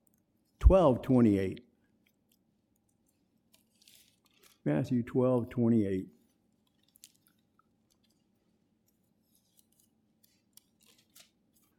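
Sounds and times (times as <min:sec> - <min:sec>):
speech: 0:00.7 - 0:01.6, 0:04.7 - 0:06.2
Bible pages being turned: 0:02.1 - 0:04.6, 0:06.2 - 0:11.7.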